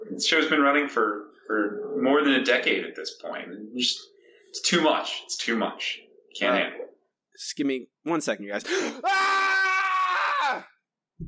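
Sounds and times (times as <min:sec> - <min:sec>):
speech: 0:00.2 - 0:06.8, 0:07.4 - 0:09.5
person screaming in frustration: 0:08.9 - 0:10.7.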